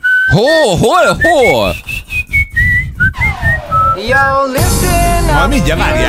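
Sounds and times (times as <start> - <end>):
person whistling a song melody: 0.0 - 0.5, 1.1 - 4.0
speech: 0.3 - 2.0, 4.0 - 6.0.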